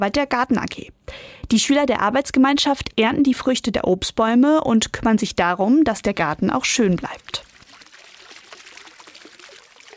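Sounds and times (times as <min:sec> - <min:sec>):
speech: 0:00.0 - 0:07.5
water trickling and splashing in a long school courtyard fountain with five channels: 0:07.1 - 0:09.9.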